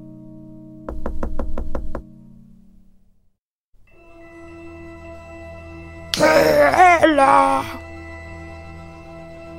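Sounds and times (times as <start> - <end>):
knocking on a door: 0.9 - 2.1
soft sustained musical drone: 3.9 - 9.5
person speaking: 6.2 - 7.8.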